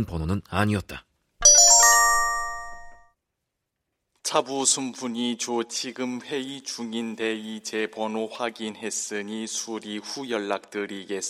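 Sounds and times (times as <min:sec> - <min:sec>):
speech: 0:00.0 - 0:01.1, 0:04.3 - 0:11.2
mobile phone text message notification chime: 0:01.4 - 0:03.1.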